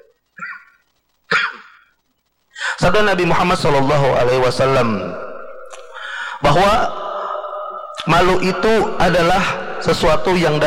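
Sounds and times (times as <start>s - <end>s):
speaker coughing during an Islamic religious lecture: 1.3s - 1.8s
speech: 2.8s - 5.2s, 6.5s - 7.0s, 8.0s - 10.6s.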